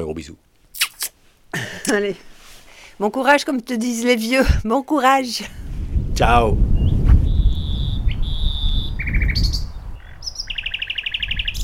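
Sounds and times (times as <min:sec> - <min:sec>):
speech: 0:00.0 - 0:00.5, 0:01.5 - 0:02.3, 0:03.0 - 0:05.6, 0:06.2 - 0:06.7
nightingale singing: 0:06.7 - 0:11.6.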